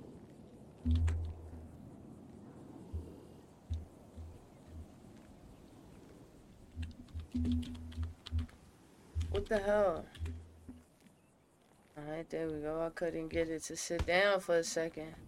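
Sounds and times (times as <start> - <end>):
speech: 0.8 - 1.2, 9.4 - 10.2, 12.0 - 15.2
typing on a computer keyboard: 0.9 - 1.6, 6.8 - 8.5, 9.2 - 10.5.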